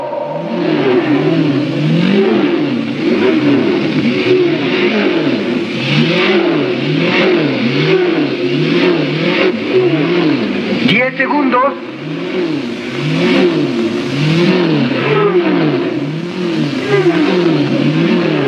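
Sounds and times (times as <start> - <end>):
racing car engines revving at the start of a race: 0.0 - 18.4.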